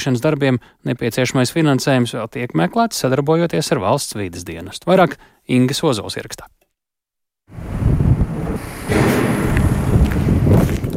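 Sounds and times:
speech: 0:00.0 - 0:06.6
strong gusty wind at a snow-covered former metallurgical plant: 0:07.5 - 0:10.9.

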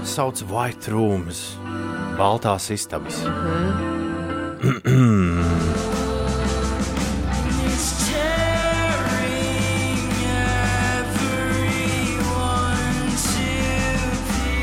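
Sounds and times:
song with sung vocals and full instrumentation: 0:00.0 - 0:14.6
speech: 0:00.2 - 0:03.9, 0:04.6 - 0:05.8.

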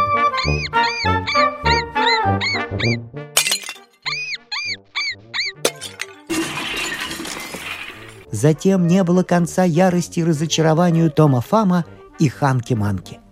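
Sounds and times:
high squeaky chirps: 0:00.0 - 0:03.0, 0:04.0 - 0:05.8
speech: 0:08.4 - 0:13.2.

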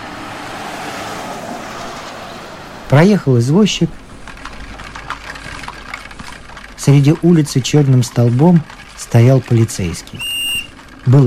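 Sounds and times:
car driving past: 0:00.0 - 0:03.2
speech: 0:02.9 - 0:04.0, 0:06.8 - 0:10.3, 0:11.0 - 0:11.2.

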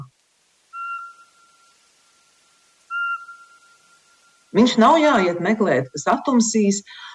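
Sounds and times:
faint steady tone: 0:00.0 - 0:07.1
Eurasian pygmy owl whistling call: 0:00.7 - 0:05.2
speech: 0:04.5 - 0:07.1.

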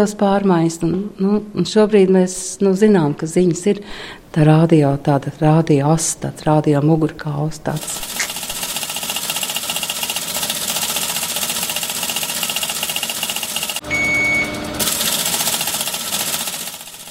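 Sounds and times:
speech: 0:00.0 - 0:08.2
teletype machine printing news in a radio building booth: 0:07.8 - 0:13.8, 0:14.8 - 0:17.0.

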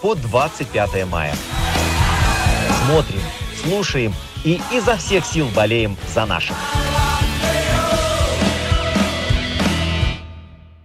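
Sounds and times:
speech: 0:00.0 - 0:01.8, 0:02.8 - 0:06.9
large hockey stadium crowd chanting: 0:01.4 - 0:03.6, 0:06.5 - 0:09.3.

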